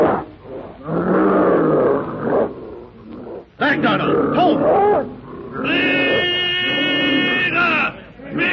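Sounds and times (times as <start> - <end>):
great ape roaring: 0.0 - 7.6
ape screaming: 3.6 - 8.5
speech: 3.8 - 5.8.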